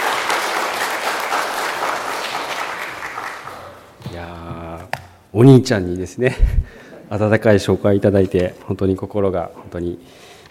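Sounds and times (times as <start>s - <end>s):
room full of people applauding to welcome a speaker: 0.0s - 3.9s
man speaking close to the microphone: 4.0s - 10.1s
speech: 5.4s - 10.3s.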